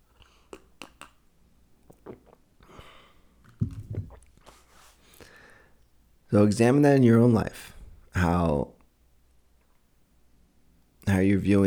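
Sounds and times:
person gulping: 1.8s - 4.5s
person sipping coffee from a cup: 1.8s - 5.3s
speech: 6.3s - 8.7s, 11.2s - 11.6s.

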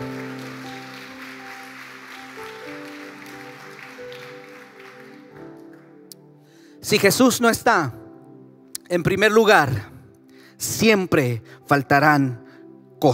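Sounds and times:
audience applause: 0.0s - 6.0s
speech: 6.8s - 8.0s, 8.9s - 9.9s, 10.6s - 12.4s.

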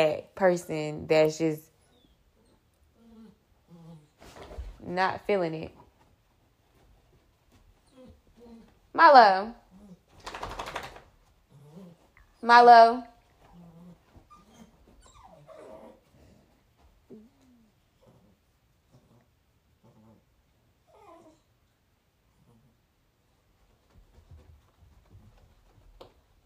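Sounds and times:
speech: 0.0s - 1.7s, 4.8s - 5.8s, 9.0s - 9.6s, 12.4s - 13.1s
dog whimpering and yipping: 7.8s - 8.7s, 13.5s - 16.0s, 20.9s - 21.5s.

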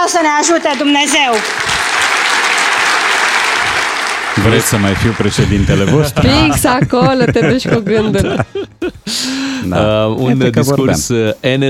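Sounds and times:
large crowd applauding after a political speech in Romania: 0.0s - 8.0s
speech: 0.1s - 1.8s, 4.4s - 9.0s, 9.6s - 11.6s
laughter: 4.4s - 9.7s.

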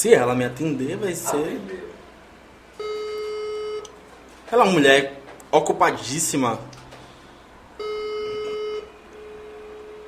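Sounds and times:
speech: 0.0s - 1.9s, 4.5s - 6.8s
phone call tone beep while a regular call and a WhatsApp call are dialed: 2.8s - 3.9s, 7.8s - 10.0s.

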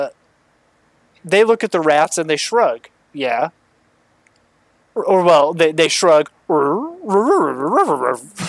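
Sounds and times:
speech: 0.0s - 0.2s, 1.2s - 3.6s, 5.0s - 8.4s
person imitating dog noises with whiny yipping sounds: 6.5s - 8.4s.

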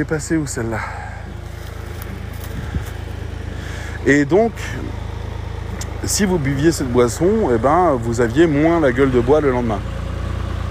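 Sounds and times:
speech: 0.0s - 1.1s, 4.0s - 5.0s, 6.0s - 10.0s
tractor engine rumbling as it drives past in a forest: 0.0s - 10.7s.

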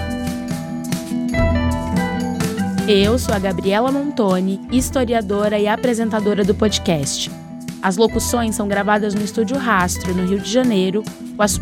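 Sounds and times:
instrumental soundtrack music: 0.0s - 11.6s
speech: 2.9s - 11.6s.

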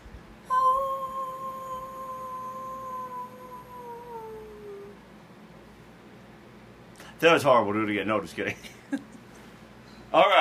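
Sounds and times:
person imitating a wolf howl: 0.5s - 5.0s
speech: 7.2s - 9.1s.

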